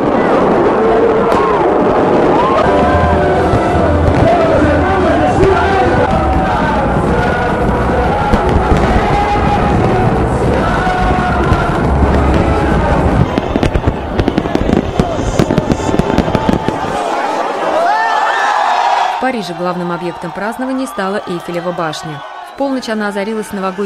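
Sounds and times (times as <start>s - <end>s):
New Year fireworks bursting over a beach: 0.0s - 17.5s
large crowd cheering on a beach: 0.0s - 23.8s
speech: 19.4s - 23.8s.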